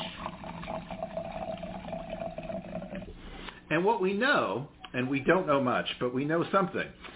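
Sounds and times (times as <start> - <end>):
red Cabernet wine pouring into a glass: 0.0 - 3.2
speech: 3.7 - 7.0.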